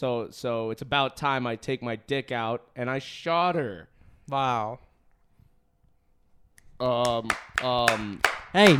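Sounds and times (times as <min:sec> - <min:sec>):
speech: 0:00.0 - 0:04.9, 0:06.8 - 0:08.7
light sharp finger claps: 0:06.6 - 0:08.7.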